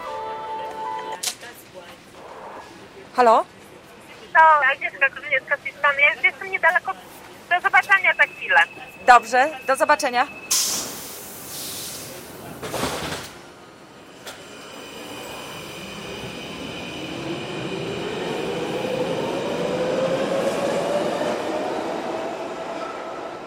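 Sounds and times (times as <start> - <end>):
metro train in Brussels rumbling along the track: 0.0 - 23.4
speech: 3.2 - 3.6, 4.4 - 10.4
hiss of air from a metro train: 10.5 - 12.3.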